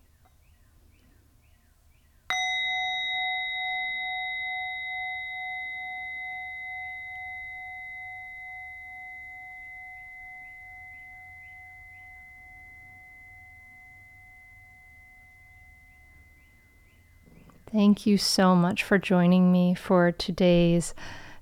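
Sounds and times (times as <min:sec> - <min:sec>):
faint birdsong chirps: 0:00.0 - 0:02.3, 0:07.1 - 0:17.8
meditation bell struck to end a meditation: 0:02.3 - 0:17.8
speech: 0:17.8 - 0:21.2.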